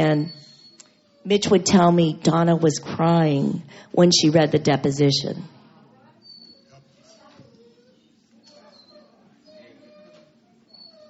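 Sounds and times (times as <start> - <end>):
speech: 0.0 - 0.5, 1.2 - 5.6
dog whining in high-pitched bursts: 0.1 - 1.6, 6.2 - 11.0.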